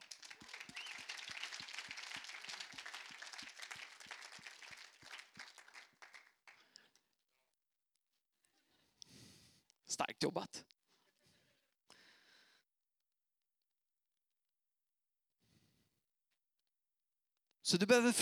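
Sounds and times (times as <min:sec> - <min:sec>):
crowd applauding: 0:00.0 - 0:06.8
speech: 0:10.0 - 0:10.7, 0:17.8 - 0:18.2.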